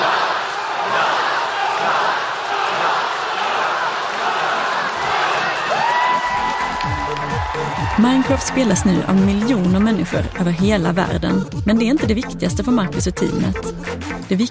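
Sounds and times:
large crowd of fans screaming and cheering at a stage event: 0.0s - 10.0s
speech: 8.0s - 14.4s.

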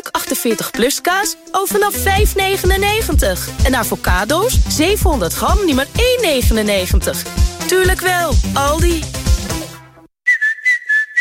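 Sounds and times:
speech: 0.3s - 9.2s
person whistling a short bright tune: 10.2s - 11.2s.

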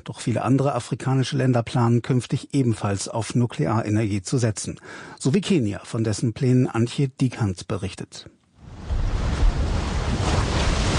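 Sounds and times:
speech: 0.0s - 8.4s
Indian Ocean waves crashing against a steep rock cliff on Kenya's coast: 8.6s - 10.9s.

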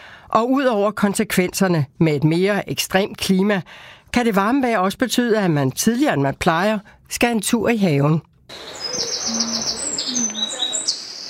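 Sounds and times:
speech: 0.4s - 10.3s
birds singing and chirping outdoors in spring: 8.5s - 11.2s.

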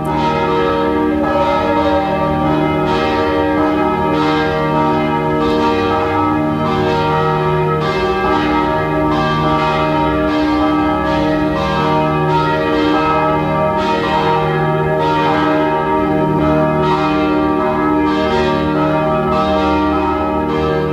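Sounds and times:
several church bells pealing: 0.0s - 20.9s.

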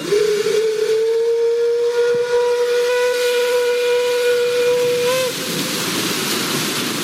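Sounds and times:
steam whistle of a 119-year-old paddle steamer on Lake Lucerne: 0.0s - 5.6s
hissing background: 0.0s - 7.0s.

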